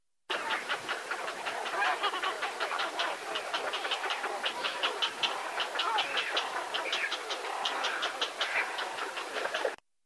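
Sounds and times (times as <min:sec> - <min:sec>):
grey heron call: 0:00.3 - 0:09.8.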